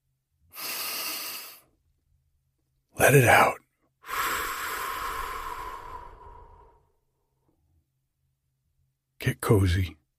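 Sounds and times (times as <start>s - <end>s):
deep breath drawn in slowly: 0.5s - 1.7s, 4.0s - 7.0s
speech: 3.0s - 3.6s, 9.5s - 10.0s.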